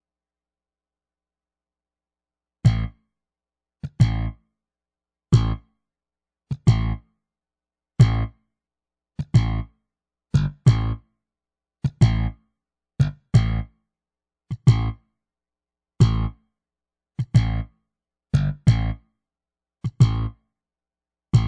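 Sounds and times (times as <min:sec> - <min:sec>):
bass solo: 0:02.7 - 0:03.0, 0:03.8 - 0:04.4, 0:05.3 - 0:05.6, 0:06.5 - 0:07.0, 0:08.0 - 0:08.4, 0:09.2 - 0:09.7, 0:10.4 - 0:11.0, 0:11.8 - 0:12.4, 0:13.0 - 0:13.7, 0:14.5 - 0:15.0, 0:16.0 - 0:16.4, 0:17.2 - 0:17.7, 0:18.4 - 0:19.0, 0:19.8 - 0:20.4.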